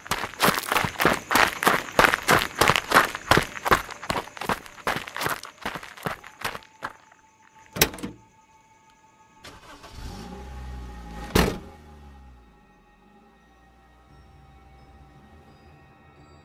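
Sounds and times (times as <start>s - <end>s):
running footsteps of a person running for a car: 0.0s - 7.7s.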